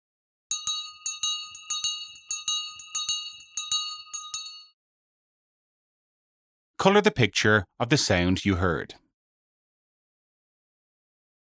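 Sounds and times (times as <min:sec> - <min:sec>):
school bell ringing for a break: 0:00.5 - 0:04.7
speech: 0:06.8 - 0:09.0.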